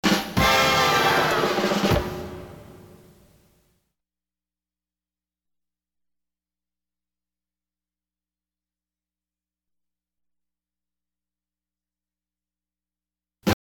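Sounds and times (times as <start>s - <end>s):
drum stops: 0.0s - 3.2s.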